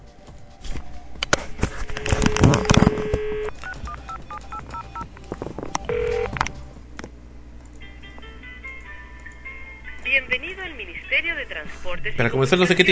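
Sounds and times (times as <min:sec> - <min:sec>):
phone keypad dialing tones: 0:01.9 - 0:05.1, 0:05.8 - 0:06.4
speech: 0:11.9 - 0:12.9.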